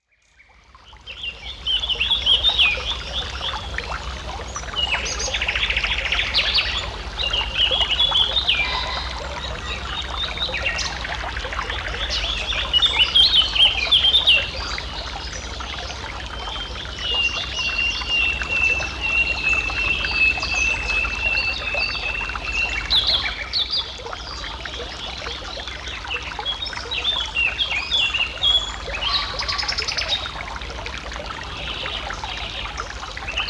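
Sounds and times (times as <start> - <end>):
birds by a Dutch forest stream: 0.0 - 33.4.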